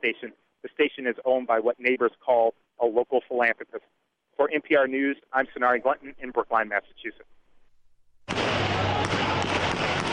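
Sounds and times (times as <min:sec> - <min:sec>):
speech: 0:00.0 - 0:07.4
explosions: 0:08.2 - 0:10.1
gunshots: 0:08.3 - 0:10.1.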